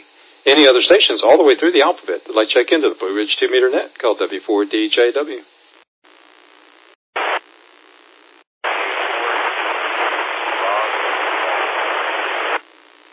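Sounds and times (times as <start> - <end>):
steady hiss from a radio transmission: 0.0 - 13.1
speech: 0.4 - 5.6
radio static: 6.1 - 13.1.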